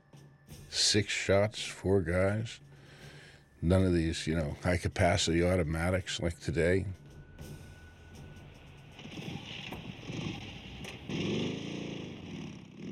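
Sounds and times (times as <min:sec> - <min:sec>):
speech: 0:00.8 - 0:02.7, 0:03.6 - 0:07.0
Moto Guzzi motorcycle engine rumbling and revving: 0:09.0 - 0:12.9.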